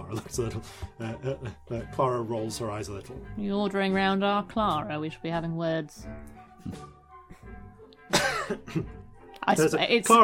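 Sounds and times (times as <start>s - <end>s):
speech: 0.1s - 6.9s, 8.5s - 10.2s
small short cough: 8.1s - 9.0s.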